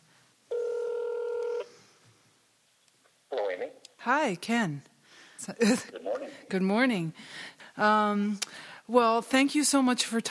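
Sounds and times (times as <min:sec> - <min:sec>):
electronic touch-tone telephone tone from one key pressed while dialing: 0:00.5 - 0:01.7
speech: 0:04.0 - 0:10.2.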